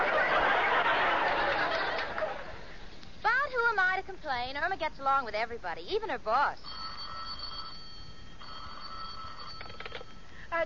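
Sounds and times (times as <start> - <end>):
laughter: 0.0 - 2.8
constant hiss: 0.0 - 10.6
speech: 4.1 - 6.7
telephone ringing in an attorney's office: 6.6 - 10.3.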